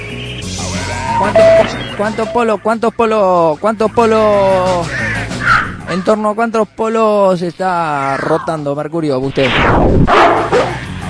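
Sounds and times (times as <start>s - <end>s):
speech: 1.2s - 5.0s, 5.9s - 10.7s
neighbour's dog barking: 5.4s - 5.8s, 10.1s - 10.8s.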